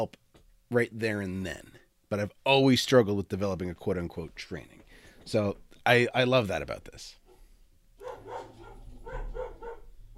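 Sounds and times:
speech: 0.0s - 7.2s
dogs barking: 8.0s - 10.1s.

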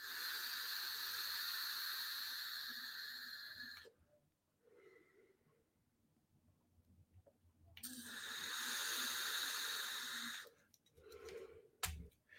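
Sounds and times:
drawing air through an e-cigarette vape while testing its airflow setting: 0.0s - 3.9s, 7.8s - 11.4s.

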